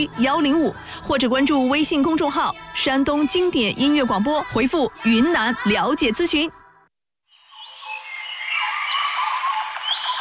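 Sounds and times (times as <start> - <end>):
speech: 0.0 - 6.6
dense chorus of birdsong: 7.3 - 10.2.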